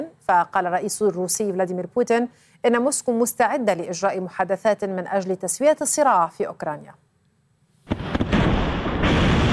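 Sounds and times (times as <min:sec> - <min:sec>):
speech: 0:00.0 - 0:07.1
explosions from missile and drone strikes in Kyiv: 0:07.9 - 0:09.5.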